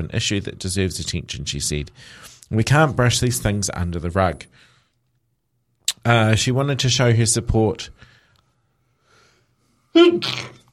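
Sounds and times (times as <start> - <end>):
speech: 0.0 - 4.7, 6.0 - 8.1, 10.0 - 10.6
sneeze: 10.0 - 10.7.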